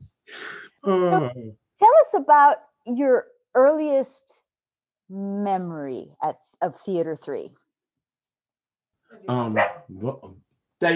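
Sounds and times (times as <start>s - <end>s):
speech: 0.8s - 4.4s, 5.1s - 7.6s, 9.1s - 10.9s
pet dog barking: 9.4s - 9.9s.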